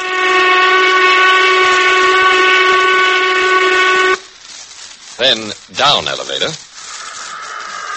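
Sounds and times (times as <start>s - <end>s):
noon whistle blasting: 0.0s - 4.3s
speech: 5.2s - 6.6s.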